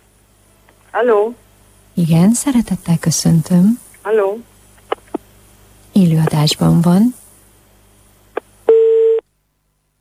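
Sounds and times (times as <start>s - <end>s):
speech: 0.9s - 1.4s, 2.0s - 4.5s, 6.0s - 7.2s
short steady mid-pitched telephone beep as a phone-in call cuts off: 8.7s - 9.2s.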